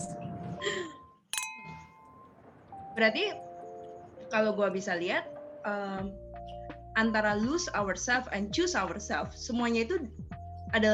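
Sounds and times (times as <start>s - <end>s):
drinking glasses clinking in a toast: 1.4s - 2.2s
speech: 3.0s - 3.5s, 4.3s - 6.2s, 7.0s - 10.9s.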